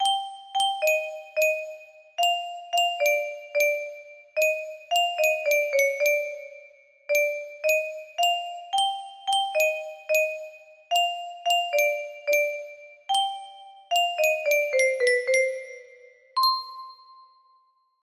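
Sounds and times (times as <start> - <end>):
music box lullaby melody: 0.0 - 18.0.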